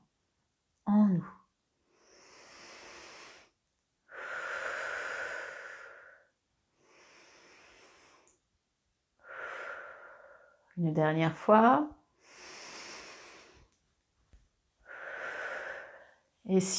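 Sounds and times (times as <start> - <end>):
speech: 0.9 - 1.4, 10.8 - 12.0, 16.5 - 16.7
slow deep breathing during a seated breathing exercise: 1.9 - 8.4, 9.2 - 10.7, 12.2 - 13.8, 14.8 - 16.3.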